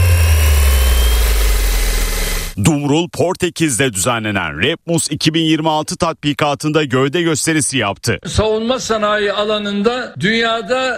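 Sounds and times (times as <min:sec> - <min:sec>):
armed mini unmanned helicopter engine drone: 0:00.0 - 0:02.6
speech: 0:02.7 - 0:10.9.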